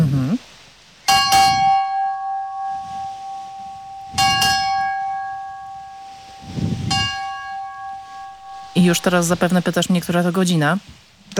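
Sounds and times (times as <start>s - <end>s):
ship's bell struck by a sailor aboard a ship: 1.0s - 10.2s
speech: 8.8s - 11.3s.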